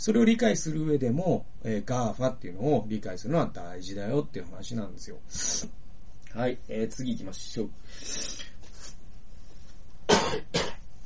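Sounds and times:
speech: 0.0s - 8.5s, 10.2s - 10.7s
person with a sore throat coughing harshly: 10.1s - 10.8s.

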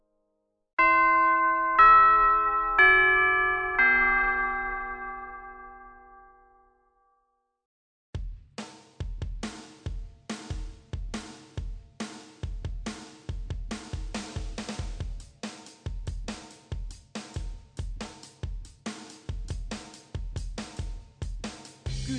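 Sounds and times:
clear four-note chime: 0.8s - 7.2s.

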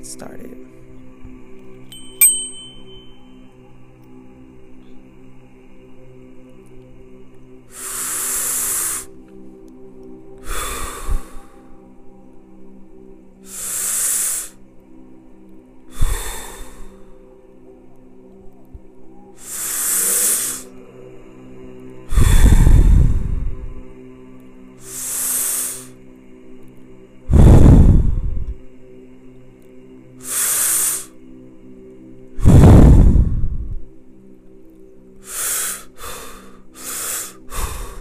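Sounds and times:
faint steady tonal hum: 0.0s - 35.3s
deep slow breaths: 7.5s - 17.8s, 18.4s - 29.2s, 30.2s - 34.1s, 35.2s - 37.9s.

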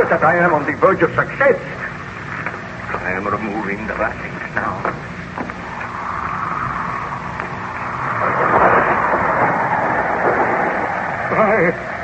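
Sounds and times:
speech: 0.0s - 1.9s, 3.0s - 5.0s, 11.4s - 11.9s
howling storm wind: 1.9s - 12.0s
loud sustained stormy roar with rumbling low noise: 2.6s - 12.0s.

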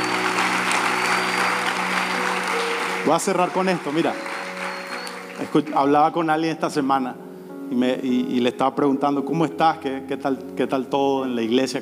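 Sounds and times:
church congregation applauding: 0.0s - 6.4s
speech: 3.0s - 4.3s, 5.4s - 11.7s.

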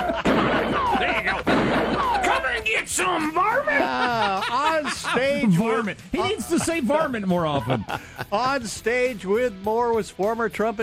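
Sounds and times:
laughter: 0.0s - 8.7s
gunshots fired on stage at a political rally: 0.1s - 2.4s
speech: 2.9s - 10.8s.

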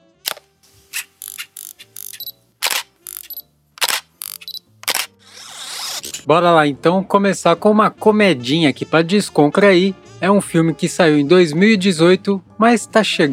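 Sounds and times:
photo camera shutter clicks: 0.2s - 6.1s
photo camera lens zoom whirring: 1.0s - 6.1s
speech: 6.3s - 13.3s.

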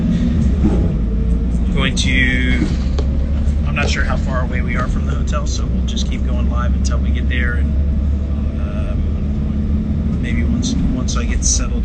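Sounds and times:
bus engine rumble and road noise on the road into Phoenix: 0.0s - 11.8s
rising whine: 0.0s - 11.8s
speech: 3.9s - 8.0s, 10.2s - 11.8s.

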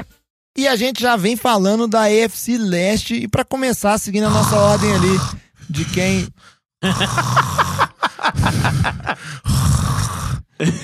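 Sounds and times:
speech: 0.6s - 7.5s, 10.6s - 10.8s
person loudly imitating snoring: 4.2s - 10.6s
laughter: 6.8s - 9.4s, 10.6s - 10.8s.

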